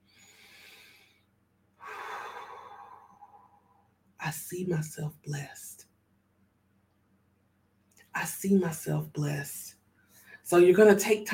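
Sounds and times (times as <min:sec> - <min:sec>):
deep breath taken during a guided prayer and meditation: 0:00.0 - 0:03.9, 0:10.0 - 0:10.4
speech: 0:04.3 - 0:05.8, 0:08.2 - 0:09.8, 0:10.5 - 0:11.3.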